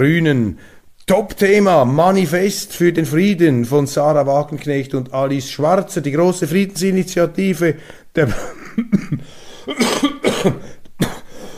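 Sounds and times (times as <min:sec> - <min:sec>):
speech: 0:00.0 - 0:10.8
throat clearing: 0:08.2 - 0:11.3
person coughing: 0:08.2 - 0:11.5.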